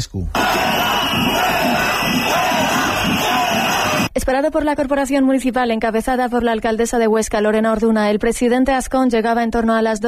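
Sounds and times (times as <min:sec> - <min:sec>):
speech: 0:00.0 - 0:02.8, 0:04.2 - 0:10.0
crowd of protesters shouting at Centro Cultural Matadero entrance in Huesca Spain: 0:00.4 - 0:04.1.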